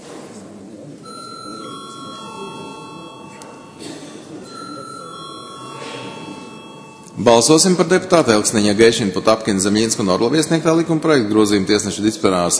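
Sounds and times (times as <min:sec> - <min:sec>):
murmur: 0:00.0 - 0:12.5
parliamentary voting call bell ringing: 0:01.0 - 0:07.8
speech: 0:07.2 - 0:12.5.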